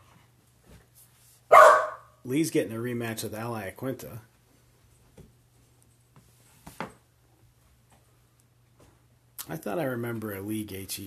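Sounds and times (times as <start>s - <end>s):
dog barking: 1.5s - 2.2s
speech: 2.2s - 4.3s, 9.6s - 11.0s.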